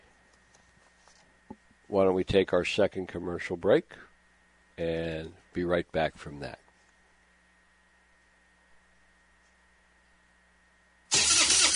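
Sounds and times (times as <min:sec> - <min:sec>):
speech: 0:01.9 - 0:04.1, 0:04.8 - 0:06.6
truck engine cranking but failing to start: 0:11.1 - 0:11.7.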